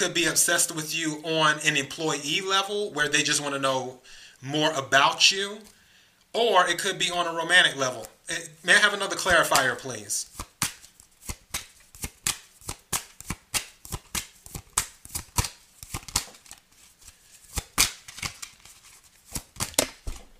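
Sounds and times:
speech: 0.0 - 10.4
tarot cards shuffled by hand: 9.2 - 20.3.

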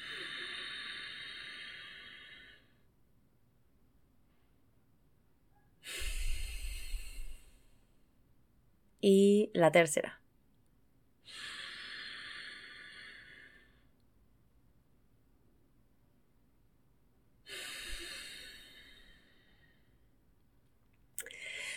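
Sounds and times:
deep forceful breaths through the nose in a Nauli breathing exercise: 0.0 - 2.9, 5.8 - 8.0, 11.2 - 14.0, 17.5 - 20.1
speech: 9.0 - 10.2.

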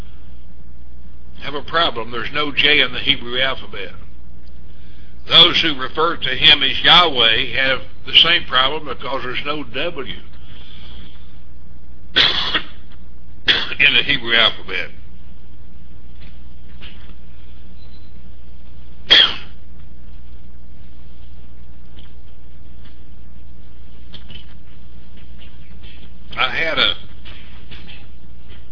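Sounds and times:
low hum: 0.0 - 28.7
speech: 1.5 - 4.0, 5.2 - 10.3, 13.8 - 15.0, 26.4 - 27.0
person coughing: 12.2 - 12.8, 13.5 - 13.8, 19.1 - 19.6.

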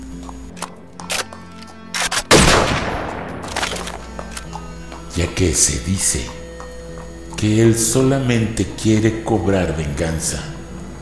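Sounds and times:
revolver gunshot: 2.2 - 4.1
low hum: 2.3 - 10.9
speech: 5.2 - 6.4, 7.4 - 10.6.

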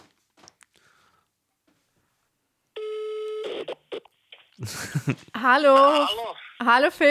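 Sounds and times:
telephone ringing tone while calling: 2.8 - 4.1
laughter: 4.6 - 6.1
speech: 4.6 - 7.0.

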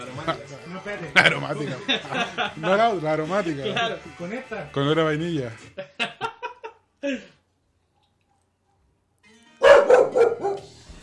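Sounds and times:
laughter: 0.1 - 4.1, 5.6 - 7.2
speech: 0.1 - 5.9, 7.0 - 7.3
dog barking: 9.6 - 10.7.

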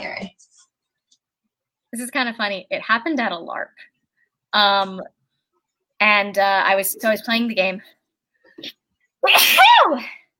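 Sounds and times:
speech: 1.9 - 3.9, 4.5 - 5.2, 6.0 - 8.0, 8.6 - 10.2
person sneezing: 9.2 - 10.0.

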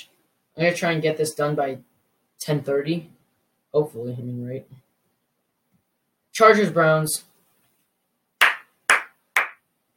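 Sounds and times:
speech: 0.0 - 4.8, 6.4 - 7.3
loud sharp claps: 8.4 - 9.7.

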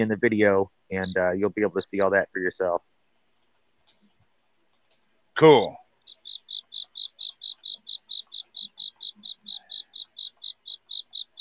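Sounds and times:
speech: 0.0 - 2.9, 5.4 - 5.8
crickets chirping: 6.0 - 11.4.

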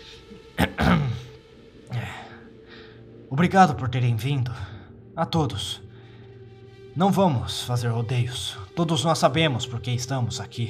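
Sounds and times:
man clearing throat before addressing a meeting: 0.6 - 2.1
speech: 3.4 - 5.8, 7.0 - 10.6.

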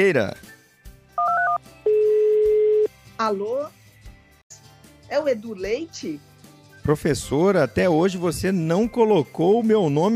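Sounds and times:
speech: 0.0 - 0.5, 3.2 - 3.8, 5.1 - 10.1
dual-tone mobile phone dialing beeps: 1.2 - 2.9.

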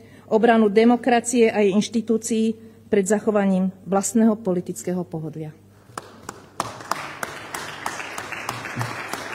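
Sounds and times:
low room hum: 0.0 - 9.3
speech: 0.3 - 5.6
one person clapping slowly and loudly, sarcastic applause: 5.9 - 9.3.

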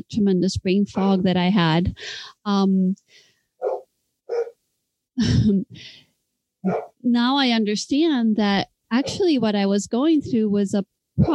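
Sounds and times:
speech: 0.0 - 3.3, 5.2 - 6.0, 6.6 - 11.3
puppies barking and yelping: 6.7 - 7.0.

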